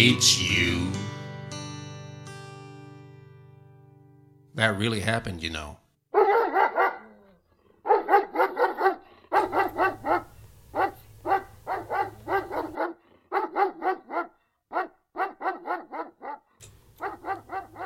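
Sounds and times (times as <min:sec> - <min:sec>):
speech: 0:00.0 - 0:00.8, 0:04.6 - 0:05.8
dog barking: 0:06.1 - 0:17.8.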